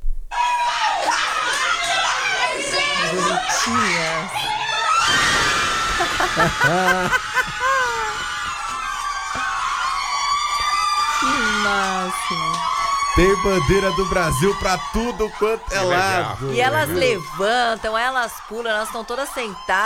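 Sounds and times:
nuns cheering and screaming after a football goal: 0.3 - 19.8
nuns laughing: 5.3 - 8.8
speech: 6.4 - 7.6, 11.6 - 19.8.

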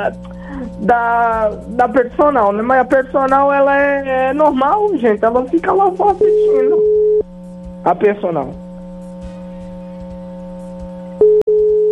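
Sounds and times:
speech: 0.0 - 6.9, 7.8 - 8.6
telephone ringing tone from an outgoing call: 6.2 - 7.2, 11.2 - 11.9.

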